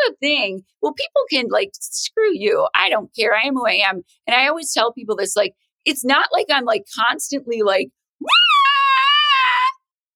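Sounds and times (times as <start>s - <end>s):
speech: 0.2s - 9.1s
woman yelling: 8.2s - 9.8s.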